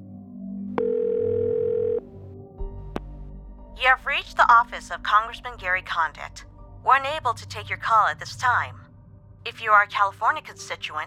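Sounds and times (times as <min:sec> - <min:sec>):
telephone dial tone: 0:00.8 - 0:02.2
speech: 0:03.8 - 0:08.8, 0:09.4 - 0:11.0.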